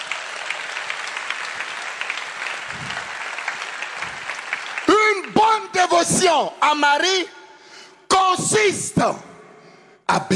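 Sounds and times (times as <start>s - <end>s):
congregation applauding during a church service: 0.0s - 7.1s
speech: 6.0s - 7.4s, 8.3s - 9.3s, 10.1s - 10.3s.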